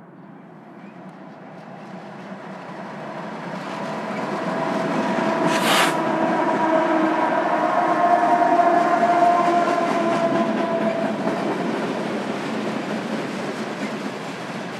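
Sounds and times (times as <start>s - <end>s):
long freight train rolling past on tracks: 0.3s - 14.7s.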